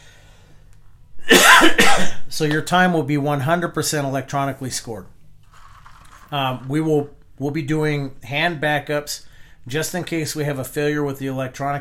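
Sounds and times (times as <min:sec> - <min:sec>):
loud harsh cough: 0:01.2 - 0:02.3
speech: 0:02.0 - 0:05.1, 0:06.3 - 0:11.7.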